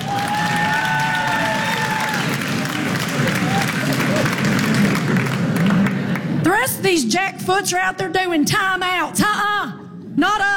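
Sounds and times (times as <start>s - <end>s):
audience applauding: 0.0s - 6.4s
speech: 6.9s - 10.5s.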